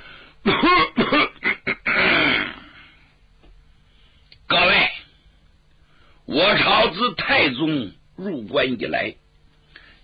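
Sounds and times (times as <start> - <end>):
performer imitating a person clearing throat: 0.4 - 2.9
performer imitating a rasping cough: 0.4 - 2.9
speech: 6.8 - 9.2.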